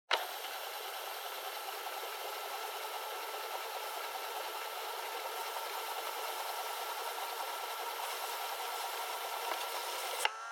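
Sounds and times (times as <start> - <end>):
portable cassette player stopping: 0.1 - 0.8
portable cassette player driving noise: 0.1 - 6.6, 7.2 - 10.4.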